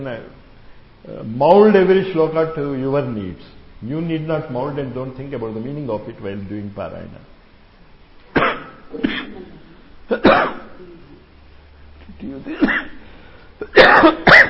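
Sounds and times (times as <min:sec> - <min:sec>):
speech: 0:00.0 - 0:07.3, 0:12.2 - 0:13.0
sharp harsh coughing: 0:08.4 - 0:11.2, 0:12.4 - 0:14.4.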